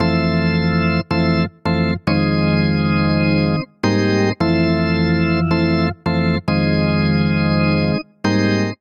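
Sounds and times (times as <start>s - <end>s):
house organ chord progression on electric keyboard: 0.0s - 8.7s.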